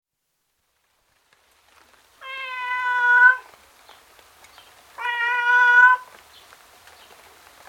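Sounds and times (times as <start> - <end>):
tom cat meowing outdoors in the rain: 2.2 - 3.5, 5.0 - 6.2.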